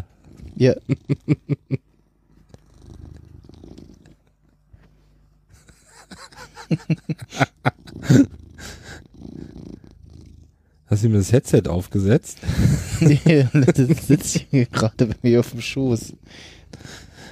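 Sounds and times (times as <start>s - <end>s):
cat clicks and snorty bursts: 0.0s - 4.8s, 5.6s - 10.9s, 16.0s - 17.3s
cat purring: 0.0s - 17.3s
laughter: 0.6s - 1.8s, 5.6s - 8.3s, 12.5s - 14.7s
speech: 0.6s - 1.8s, 6.7s - 8.4s, 10.9s - 17.0s.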